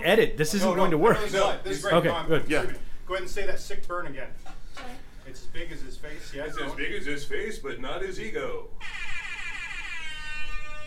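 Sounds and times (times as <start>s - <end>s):
speech: 0.0s - 9.0s
air horn sound effect played from a phone app: 8.8s - 10.8s.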